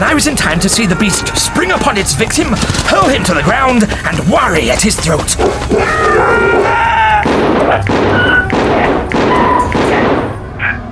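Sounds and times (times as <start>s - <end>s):
speech: 0.0s - 6.6s
revolver gunshots: 7.2s - 10.4s.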